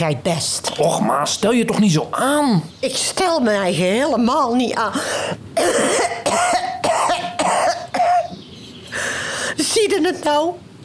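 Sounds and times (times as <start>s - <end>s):
speech: 0.0s - 6.2s, 9.8s - 10.6s
person giving dry hacking coughs: 4.9s - 8.4s.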